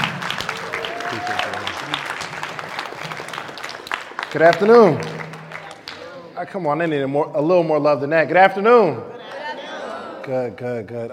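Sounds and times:
middle school audience applause welcoming a speaker: 0.0 - 6.2
crowd voices: 0.0 - 11.1
speech: 1.1 - 2.1, 4.3 - 5.2, 6.4 - 9.1, 10.3 - 11.1.

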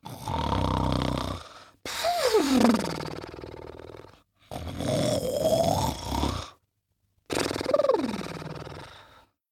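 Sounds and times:
voice imitating loud pig-like snoring: 0.0 - 6.6, 7.3 - 9.1.

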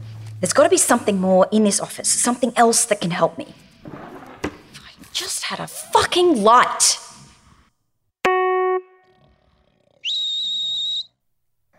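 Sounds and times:
speech: 0.4 - 4.1, 5.2 - 7.0
high-pitched dog whistle being blown: 10.0 - 11.2.

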